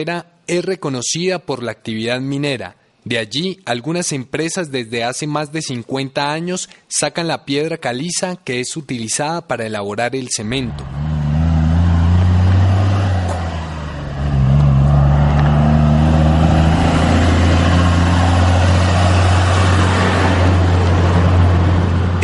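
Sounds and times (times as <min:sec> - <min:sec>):
speech: 0:00.0 - 0:11.0
heavy dump truck engines rumbling in La Carrera limestone mining area: 0:10.4 - 0:22.2.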